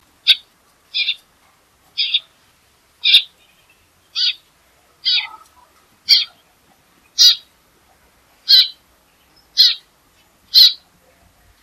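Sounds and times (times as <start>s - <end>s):
Eurasian Tree Sparrow calls: 0.2s - 1.3s, 1.9s - 2.4s, 3.0s - 7.5s, 8.4s - 10.9s.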